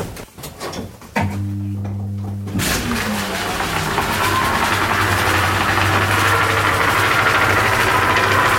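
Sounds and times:
electric motor of a mill humming: 1.2s - 8.5s
running drive belts and machinery of a mill whirring: 2.5s - 8.5s.

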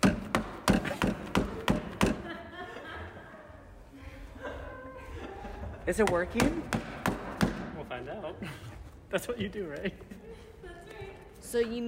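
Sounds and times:
hammer banging on a shoe: 0.0s - 2.2s, 6.0s - 7.7s
people chattering and chuckling quietly: 0.8s - 6.6s, 8.2s - 11.5s
speech: 5.9s - 6.9s, 8.3s - 10.2s, 11.5s - 11.8s.

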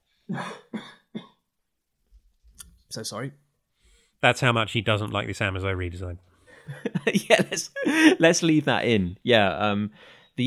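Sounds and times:
speech: 0.3s - 0.9s, 2.9s - 3.4s, 4.2s - 10.4s
person coughing harshly: 0.3s - 1.4s
laughter: 6.6s - 8.5s.

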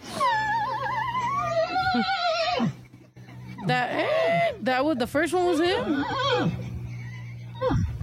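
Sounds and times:
steady low hum: 0.0s - 8.0s
horse neighing with high downward-sliding whinny: 0.2s - 2.9s, 3.5s - 4.6s, 5.4s - 8.0s
speech: 1.9s - 2.8s, 3.6s - 6.6s.

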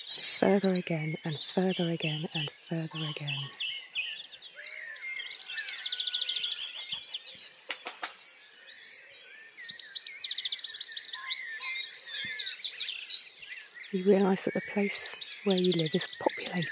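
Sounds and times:
dense chorus of many birds singing in the countryside: 0.0s - 16.7s
speech: 0.4s - 3.6s, 13.9s - 16.7s.

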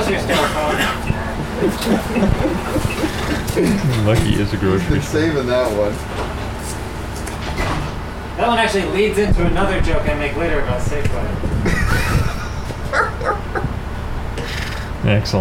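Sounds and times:
bus doors sliding open with a mechanical whoosh and rattle: 0.0s - 4.4s, 6.0s - 8.1s
laughter: 0.0s - 5.4s, 11.4s - 15.0s
low engine hum: 0.0s - 15.0s
speech: 0.1s - 0.8s, 1.6s - 2.6s, 3.6s - 6.3s, 8.4s - 13.0s, 15.1s - 15.3s.

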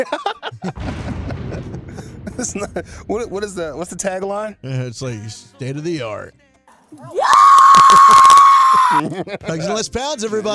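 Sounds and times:
speech: 0.0s - 1.0s, 2.4s - 10.5s
laughter: 0.0s - 2.8s, 7.7s - 10.5s
woman's primal scream: 7.0s - 9.0s.

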